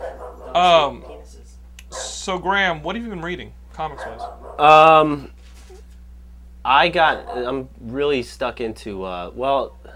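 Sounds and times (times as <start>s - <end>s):
dog bark: 0.0s - 2.2s, 3.9s - 4.7s, 7.0s - 7.6s
speech: 0.6s - 1.1s, 2.3s - 5.4s, 6.6s - 9.8s.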